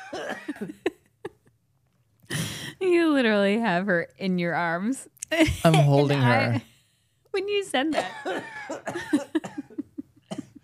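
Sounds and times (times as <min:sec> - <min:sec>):
person coughing while laughing: 0:00.0 - 0:00.8, 0:07.9 - 0:10.6
speech: 0:00.1 - 0:00.9, 0:02.8 - 0:06.7, 0:07.4 - 0:09.2.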